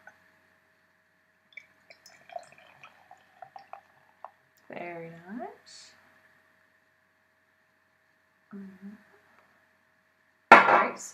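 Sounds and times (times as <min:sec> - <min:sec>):
Tuatara Pale Ale APA poured into a glass after opening: 0:01.6 - 0:04.6
speech: 0:04.8 - 0:06.0, 0:08.5 - 0:09.1, 0:11.0 - 0:11.1.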